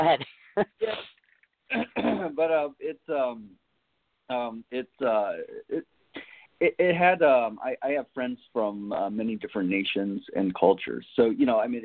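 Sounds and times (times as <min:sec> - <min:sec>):
speech: 0:00.0 - 0:01.1, 0:01.7 - 0:03.6, 0:04.3 - 0:11.8
coughing with rough voiced hacking: 0:00.0 - 0:03.3
throat clearing: 0:01.7 - 0:02.4.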